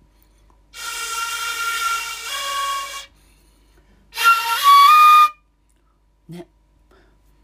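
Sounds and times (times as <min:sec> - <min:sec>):
shinobue bamboo flute playing a simple melody: 0:00.7 - 0:03.2, 0:04.1 - 0:05.5
speech: 0:06.3 - 0:06.5.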